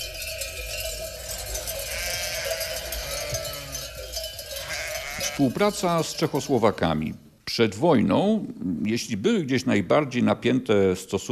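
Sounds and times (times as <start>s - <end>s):
bells clanking on a flock of sheep grazing on a Podhale pasture in the Pieniny: 0.0s - 7.4s
speech: 5.3s - 11.3s.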